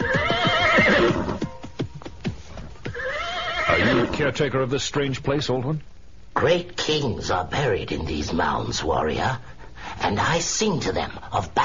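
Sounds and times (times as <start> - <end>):
horse whinnying: 0.0 - 1.6, 2.8 - 4.3
horse hooves clopping: 0.0 - 4.2
speech: 4.2 - 11.6.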